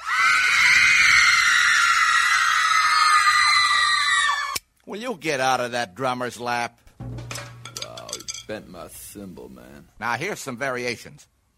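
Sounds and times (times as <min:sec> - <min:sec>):
dense crowd of high-pitched girls' screams: 0:00.0 - 0:04.6
speech: 0:04.9 - 0:06.8, 0:08.5 - 0:11.3.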